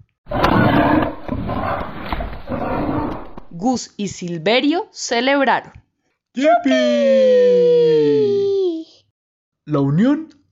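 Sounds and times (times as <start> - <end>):
bears roaring: 0.3 - 3.6
speech: 3.6 - 5.8, 6.4 - 7.7, 9.7 - 10.4.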